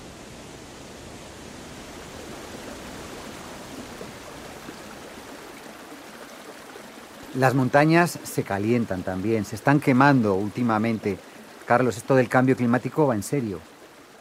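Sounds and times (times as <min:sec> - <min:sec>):
meltwater stream fed by dripping icicles rushing: 0:00.0 - 0:14.1
speech: 0:07.4 - 0:13.7.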